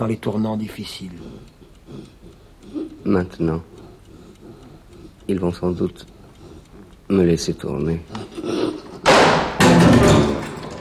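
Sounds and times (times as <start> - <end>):
speech: 0.0 - 2.1, 3.1 - 3.7, 5.3 - 6.1, 7.1 - 8.6
heavy door slamming shut: 9.0 - 10.8.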